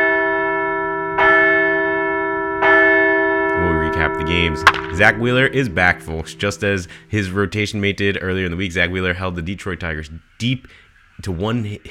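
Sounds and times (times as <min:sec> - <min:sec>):
large bell ringing for a walk-off win: 0:00.0 - 0:08.6
speech: 0:04.1 - 0:11.8.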